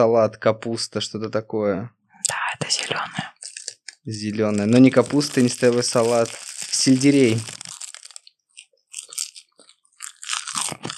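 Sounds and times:
speech: 0.0 - 3.3, 4.0 - 7.6
dried sushi seaweed being bitten and chewed: 4.5 - 10.9.

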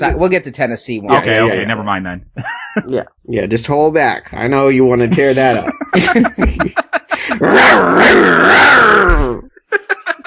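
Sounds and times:
speech: 0.0 - 9.4
laughter: 5.0 - 10.2
robotic dog growling with a metallic synthesized edge: 7.4 - 9.5.

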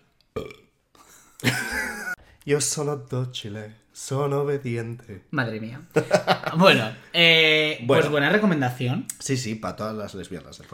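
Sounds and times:
person burping: 0.4 - 0.8
speech: 2.4 - 10.7.

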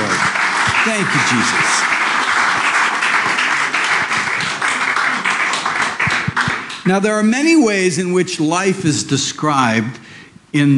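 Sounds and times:
audience applauding: 0.0 - 6.9
speech: 0.8 - 2.0, 6.8 - 10.7.

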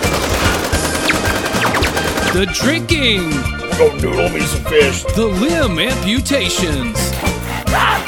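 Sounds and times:
rapid automatic gunfire bursts: 0.0 - 2.5
speech: 2.3 - 7.9.

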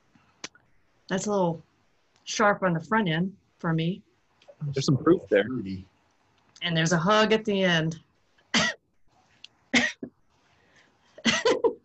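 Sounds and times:
speech: 1.1 - 1.7, 2.3 - 5.9, 6.6 - 8.1
person coughing after sipping whiskey: 8.6 - 8.8, 9.8 - 10.1, 11.2 - 11.8.

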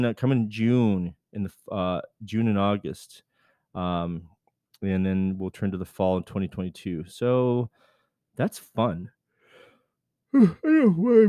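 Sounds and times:
speech: 0.0 - 9.2, 10.3 - 11.2
person yawning: 10.3 - 11.2.

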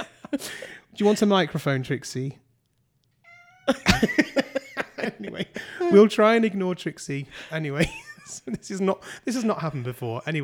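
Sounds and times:
laughter: 0.0 - 1.6, 3.7 - 6.8, 7.4 - 9.7
speech: 0.3 - 2.4, 3.7 - 4.4, 5.1 - 10.4
cat meowing after jumping onto a table: 3.2 - 4.0.

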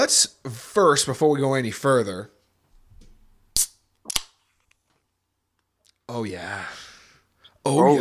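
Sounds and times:
speech: 0.0 - 2.4, 6.1 - 6.8, 7.6 - 8.0
beer can cracking open with a sharp pop: 3.6 - 4.4.

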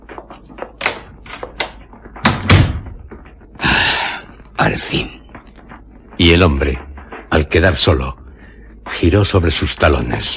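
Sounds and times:
knocks and clatters: 0.0 - 7.7
door swinging shut with a heavy thud: 2.2 - 2.9
speech: 4.6 - 5.2, 6.2 - 8.2, 8.9 - 10.3.

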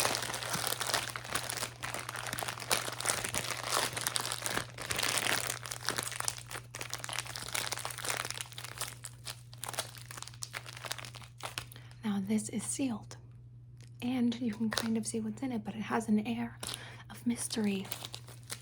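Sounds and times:
paper crumpled and folded while wrapping a gift: 0.0 - 11.8, 17.5 - 18.6
speech: 12.4 - 13.1, 14.0 - 18.0.

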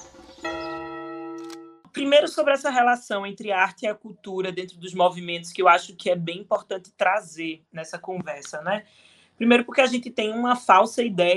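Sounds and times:
single loud church bell strike: 0.0 - 1.8
speech: 2.0 - 11.3.

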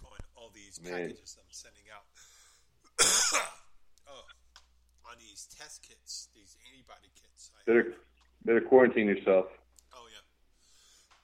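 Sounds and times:
speech: 0.7 - 2.2, 5.1 - 9.6
loud harsh raspy cough: 2.9 - 3.8.

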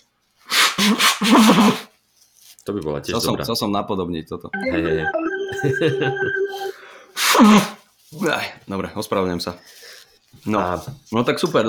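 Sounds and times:
loud nose blow: 0.5 - 1.9, 6.7 - 7.8
speech: 0.8 - 1.9, 2.6 - 11.6.

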